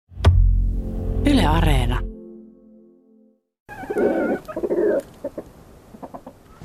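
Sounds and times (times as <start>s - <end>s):
low hum: 0.1s - 3.4s
speech: 1.5s - 2.1s
two roosters and two hens clucking and squawking in an enclosure: 3.7s - 6.6s.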